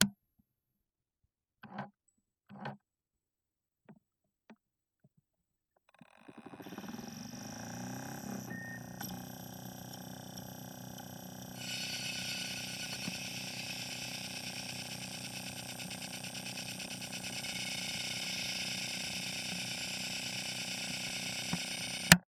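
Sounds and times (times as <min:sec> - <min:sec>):
portable DVD player starting up: 0:06.4 - 0:22.2.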